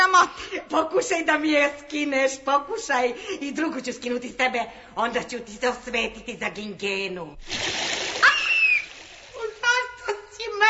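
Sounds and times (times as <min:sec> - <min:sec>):
speech: 0:00.2 - 0:08.0
water splashed onto someone: 0:07.4 - 0:10.0.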